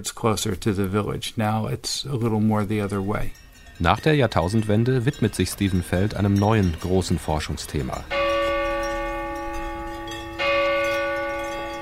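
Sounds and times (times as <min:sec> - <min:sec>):
speech: 0:00.0 - 0:08.2
church bell ringing: 0:02.8 - 0:11.8.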